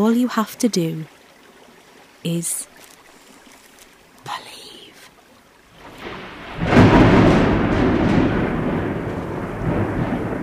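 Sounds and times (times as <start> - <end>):
speech: 0.0 - 1.2, 2.2 - 2.7
faint wash of rain: 0.0 - 10.4
deep thunder rumbling from a storm on the horizon: 5.8 - 10.4.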